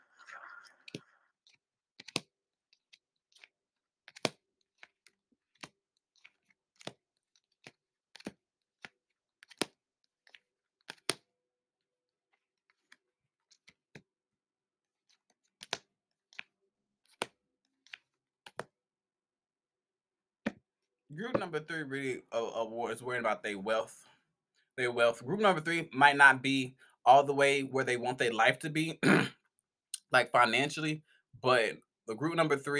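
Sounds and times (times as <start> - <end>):
cards tapped and dealt down: 1.5 - 2.3, 2.9 - 11.2, 15.1 - 18.8
speech: 21.2 - 24.0, 24.8 - 29.4, 30.1 - 32.7.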